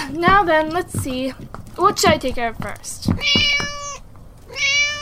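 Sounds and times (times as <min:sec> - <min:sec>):
speech: 0:00.1 - 0:03.4
cat meowing: 0:03.1 - 0:05.0.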